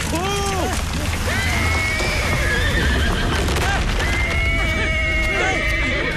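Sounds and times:
hooves clip-clopping: 0.0s - 6.1s
horses neighing: 0.4s - 6.1s.

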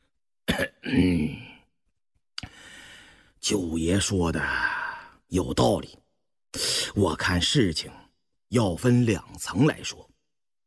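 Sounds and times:
person coughing lightly: 0.5s - 1.3s
person clearing throat: 0.5s - 1.5s
speech: 0.6s - 1.4s, 3.5s - 10.1s
soft breathy noise: 2.4s - 3.4s.

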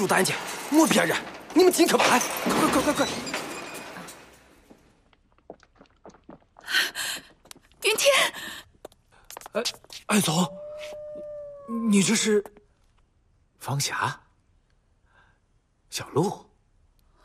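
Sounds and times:
speech: 0.0s - 3.4s, 7.9s - 8.6s, 9.5s - 11.0s, 11.7s - 12.6s, 13.6s - 14.2s, 16.0s - 16.5s
wolf howling: 10.1s - 12.4s.

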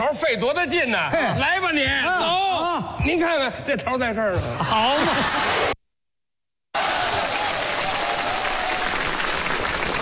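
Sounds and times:
speech: 0.1s - 5.7s
laughter: 4.6s - 5.8s
large audience applauding: 6.8s - 10.0s.

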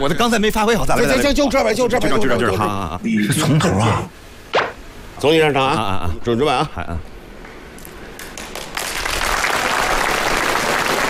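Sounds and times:
speech: 0.0s - 4.2s, 5.2s - 7.1s
audience applause for performers taking the stage: 8.2s - 11.0s.

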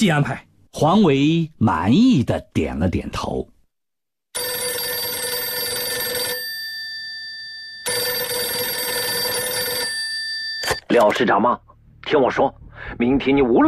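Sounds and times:
speech: 0.0s - 3.5s, 10.9s - 13.6s
telephone ringing: 4.4s - 11.3s.

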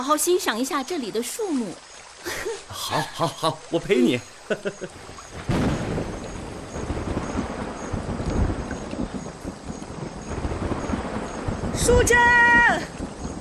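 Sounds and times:
speech: 0.0s - 5.2s, 11.9s - 13.0s
laughter: 2.2s - 5.0s
deep roll of thunder before rain: 5.0s - 13.3s.

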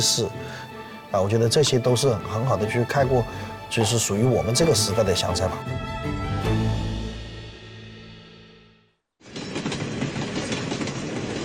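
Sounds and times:
speech: 0.0s - 6.6s
passenger train travelling on rails between Beijing and Hunan: 9.2s - 11.4s.

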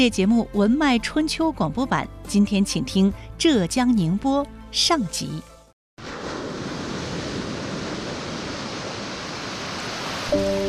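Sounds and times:
speech: 0.0s - 5.5s
East China Sea tidewater washing into hand-worked salt pans in Xiangshan, Ningbo: 6.0s - 10.6s.

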